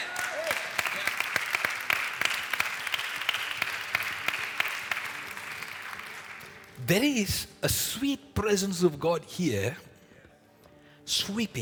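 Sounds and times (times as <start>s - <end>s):
large group clapping hands: 0.0s - 7.2s
speech: 6.9s - 9.9s, 11.2s - 11.6s.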